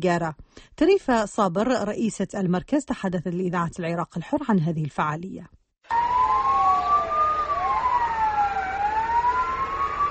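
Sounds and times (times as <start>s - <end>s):
speech: 0.0s - 6.0s
sirens of traffic police cars and fire engines wailing in Iraqi Kurdistan: 5.9s - 10.0s.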